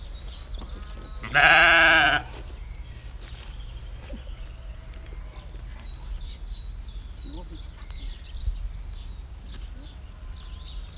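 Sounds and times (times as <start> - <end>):
sheep bleating on a sunny spring morning in Sussex: 1.2 - 2.3.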